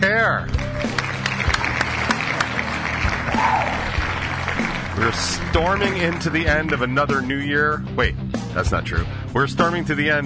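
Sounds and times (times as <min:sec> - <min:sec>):
single person clapping hands: 0:00.5 - 0:07.2
speech: 0:05.0 - 0:10.2.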